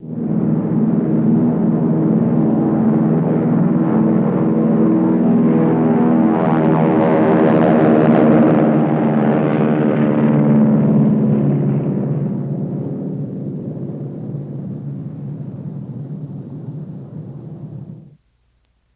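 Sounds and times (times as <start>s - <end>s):
B-29 Superfortress bomber plane: 0.0s - 18.2s.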